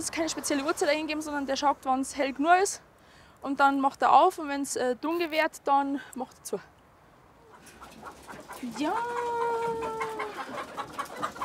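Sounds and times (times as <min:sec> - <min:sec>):
speech: 0:00.0 - 0:06.7, 0:08.0 - 0:10.1
several chickens clucking: 0:07.4 - 0:11.4.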